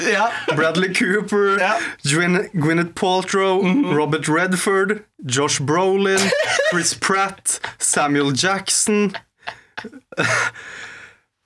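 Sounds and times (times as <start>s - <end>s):
laughter: 0.0s - 1.9s, 6.2s - 8.1s, 8.8s - 10.6s
speech: 0.0s - 10.9s
person gasping and catching breath: 1.7s - 2.0s, 9.4s - 11.3s
longer louder breathy exhale: 10.6s - 11.2s.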